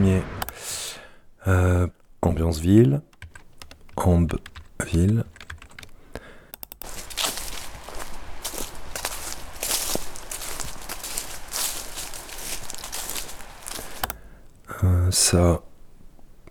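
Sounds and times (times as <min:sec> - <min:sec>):
speech: 0:01.5 - 0:03.1, 0:04.0 - 0:05.4, 0:15.1 - 0:15.7
sharp clicks: 0:03.1 - 0:06.9, 0:13.9 - 0:14.2
footsteps walking through grass: 0:06.8 - 0:14.1.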